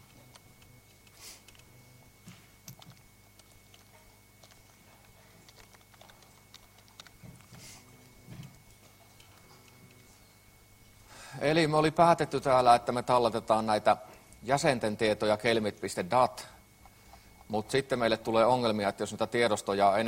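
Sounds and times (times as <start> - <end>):
steady low electrical hum: 0.0 - 20.0
typing on a computer keyboard: 2.6 - 7.5
speech: 11.4 - 16.6, 17.5 - 20.0.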